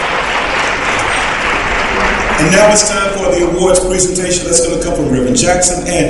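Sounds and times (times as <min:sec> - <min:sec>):
dense audience applause from a crowd: 0:00.0 - 0:04.2
speech: 0:02.4 - 0:06.0.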